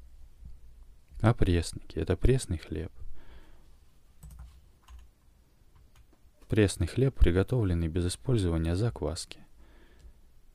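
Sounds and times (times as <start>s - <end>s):
speech: 1.2s - 3.0s, 6.5s - 9.4s
typing a search query on a computer keyboard: 4.2s - 5.1s.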